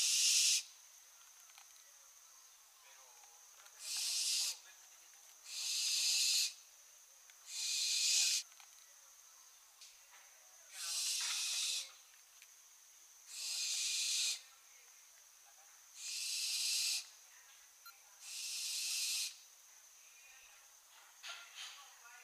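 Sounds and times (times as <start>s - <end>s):
barn owl screeches, Tyto alba: 0.0s - 0.7s, 3.8s - 4.6s, 5.5s - 6.6s, 7.5s - 8.4s, 10.7s - 12.0s, 13.3s - 14.4s, 16.0s - 17.1s, 18.2s - 19.4s.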